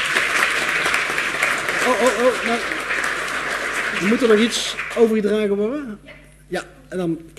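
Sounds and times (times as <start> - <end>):
crowd applauding a swearing-in: 0.0 - 5.7
speech: 1.8 - 3.0, 3.9 - 7.3.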